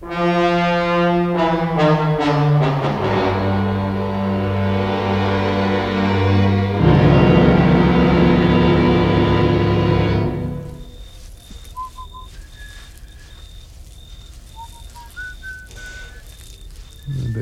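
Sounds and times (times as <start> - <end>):
burst of music: 0.0 - 10.9
hissy background: 1.0 - 17.4
person whistling a tune: 10.8 - 13.6, 14.5 - 17.4.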